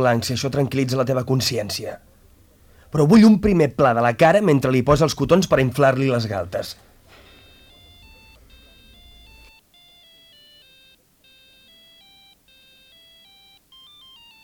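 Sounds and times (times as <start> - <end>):
speech: 0.0 - 2.1, 2.9 - 6.8
mobile phone ringtone with bright electronic melody: 7.1 - 14.4.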